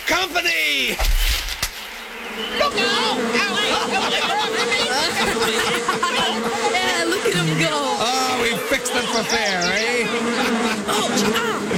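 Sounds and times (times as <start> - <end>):
speech: 0.1 - 1.3, 9.0 - 11.7
steady loud insect-like drone: 0.8 - 11.7
excited voices talking: 2.2 - 11.7
laughter: 2.6 - 11.7.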